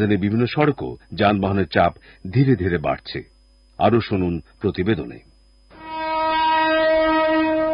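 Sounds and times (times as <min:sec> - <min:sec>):
speech: 0:00.0 - 0:05.3
train horn at a busy railway station platform: 0:05.7 - 0:07.7.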